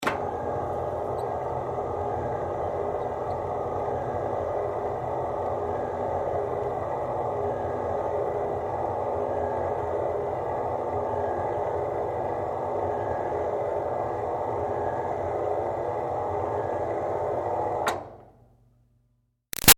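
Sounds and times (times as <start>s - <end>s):
projector screen rolling up close in an office: 0.0s - 18.2s.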